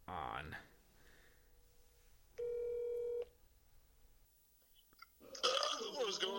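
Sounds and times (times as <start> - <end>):
faint hiss: 0.0 - 6.3
speech: 0.4 - 0.7
loud electronic telephone tone: 2.4 - 3.3.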